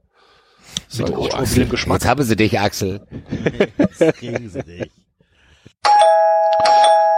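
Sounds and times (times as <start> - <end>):
speech: 0.9 - 5.0
laughter: 2.8 - 5.1
loud electronic doorbell ringing: 5.8 - 7.1.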